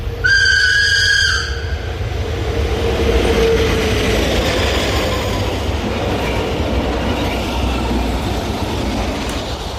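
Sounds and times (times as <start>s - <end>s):
train in Switzerland rushing past with wheels on rails: 0.0s - 9.7s
train horn blast: 0.2s - 1.9s.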